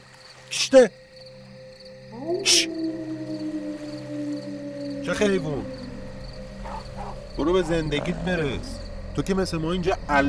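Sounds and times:
speech: 0:00.5 - 0:01.0, 0:02.2 - 0:03.4, 0:05.1 - 0:05.8, 0:07.4 - 0:10.2
dog or wolf howling: 0:02.0 - 0:08.8.

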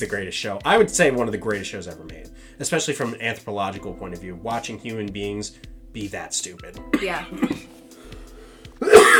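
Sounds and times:
speech: 0:00.0 - 0:07.8
harsh raspy throaty cough: 0:06.9 - 0:07.7, 0:08.8 - 0:09.1.

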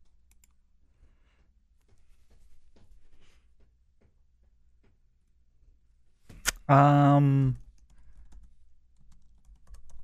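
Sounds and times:
speech: 0:06.7 - 0:07.6
typing on a computer keyboard: 0:07.6 - 0:10.0.

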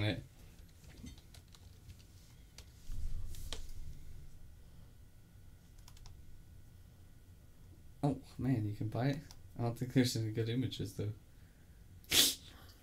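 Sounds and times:
speech: 0:00.0 - 0:00.3, 0:08.0 - 0:11.2
typing on a computer keyboard: 0:00.6 - 0:02.1, 0:05.8 - 0:06.2.

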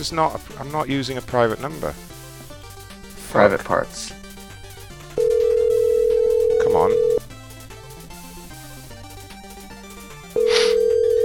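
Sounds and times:
speech: 0:00.0 - 0:02.1, 0:03.3 - 0:04.2, 0:06.8 - 0:07.1
telephone dialing tone: 0:05.2 - 0:07.2, 0:10.4 - 0:11.2.

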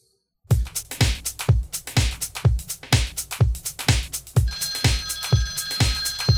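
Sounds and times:
thumping regular beat: 0:00.5 - 0:06.3
telephone bell ringing: 0:04.5 - 0:06.3.

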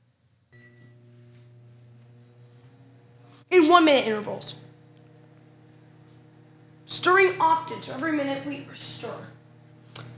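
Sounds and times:
microwave oven humming while heating ingredients: 0:00.1 - 0:10.1
microwave oven switching on with a high tone: 0:00.5 - 0:01.4
speech: 0:03.5 - 0:04.7, 0:07.0 - 0:09.4.

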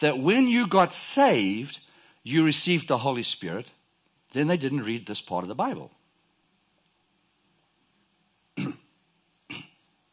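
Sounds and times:
speech: 0:00.0 - 0:06.0
person fake coughing: 0:08.6 - 0:08.9, 0:09.5 - 0:09.8.

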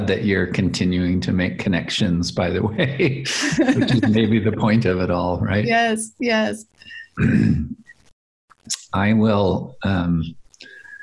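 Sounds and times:
speech: 0:00.1 - 0:07.8, 0:08.7 - 0:10.4
laughter: 0:02.6 - 0:04.9
person clearing throat or coughing: 0:07.2 - 0:07.8
faint breathy sound: 0:10.6 - 0:11.0.

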